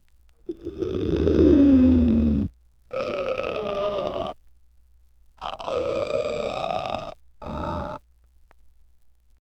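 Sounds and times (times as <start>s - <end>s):
humanoid groaning: 0.5s - 4.4s, 5.4s - 8.0s.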